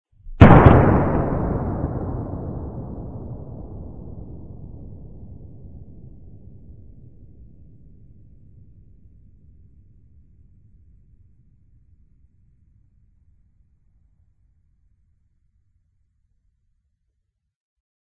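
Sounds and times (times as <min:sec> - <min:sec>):
distant explosion: 0:00.3 - 0:06.2.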